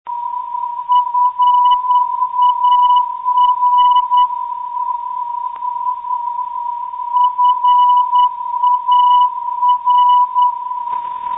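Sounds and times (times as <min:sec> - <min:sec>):
NDB radio beacon signal on 332 kHz: 0:00.1 - 0:06.3, 0:07.2 - 0:11.3.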